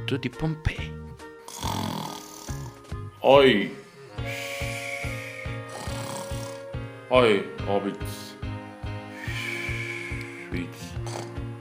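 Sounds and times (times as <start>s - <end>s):
speech: 0.1s - 0.9s, 3.2s - 3.8s, 7.1s - 8.2s
snoring imitated in rhythm in a sung Italian children's story: 1.4s - 2.9s, 3.6s - 6.9s, 9.1s - 11.6s
sustained musical tones: 2.7s - 11.6s.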